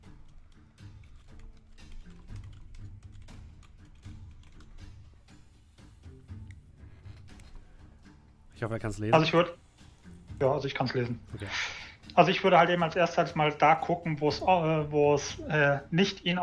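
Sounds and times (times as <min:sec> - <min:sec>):
typing a message on a computer keyboard: 0:01.1 - 0:04.9
speech: 0:08.6 - 0:09.6, 0:10.4 - 0:16.4.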